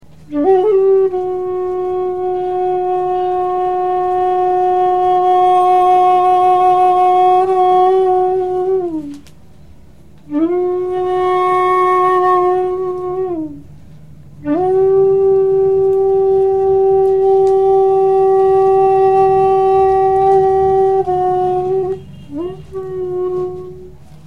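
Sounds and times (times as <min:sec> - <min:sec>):
flute: 0:00.2 - 0:09.3, 0:10.2 - 0:13.7, 0:14.4 - 0:24.2.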